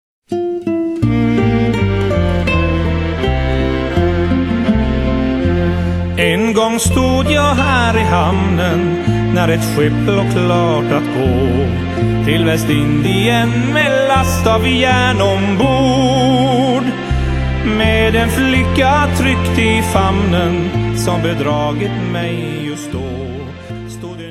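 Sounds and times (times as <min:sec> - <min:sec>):
British ballad: 0:00.3 - 0:24.3.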